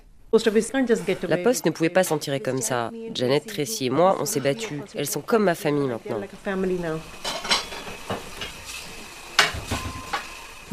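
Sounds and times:
speech: 0:00.3 - 0:07.3
soft running hiss at a kitchen sink: 0:05.9 - 0:10.7
dishes clinking and clattering at a kitchen sink: 0:07.1 - 0:10.7.

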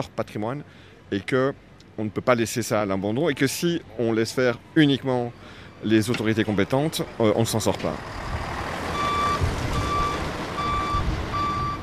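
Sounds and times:
speech: 0:00.0 - 0:08.3
heavy firefighting logistics lorry engine rumbling while reversing: 0:00.0 - 0:11.8
heavy truck backup alarm beeping: 0:04.8 - 0:11.8.

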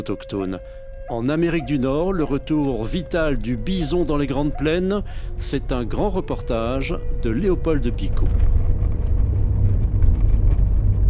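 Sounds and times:
speech: 0:00.0 - 0:08.6
gusty wind buffeting a car on the plains of Alberta: 0:05.0 - 0:11.0
small car driving across the yellowed plains of Alberta: 0:07.4 - 0:11.0.

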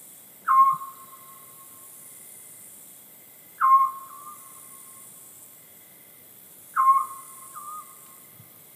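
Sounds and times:
faint hiss: 0:00.0 - 0:08.7
scops owl calling from a played recording: 0:00.4 - 0:01.7, 0:03.6 - 0:04.9, 0:06.7 - 0:08.2.

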